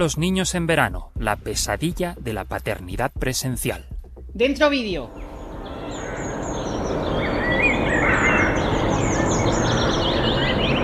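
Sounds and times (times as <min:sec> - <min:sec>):
speech: 0:00.0 - 0:05.2
many birds chirping and singing in a park: 0:05.0 - 0:10.8.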